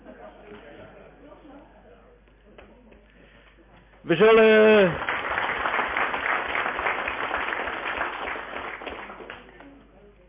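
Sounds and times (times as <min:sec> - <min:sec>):
speech: 0:04.0 - 0:05.1
audience applause at a municipal council meeting: 0:04.3 - 0:09.7.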